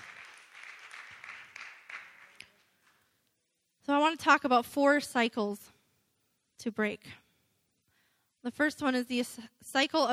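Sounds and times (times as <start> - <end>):
crowd applause: 0.0 - 3.0
speech: 4.0 - 5.7, 6.6 - 7.2, 8.4 - 10.1.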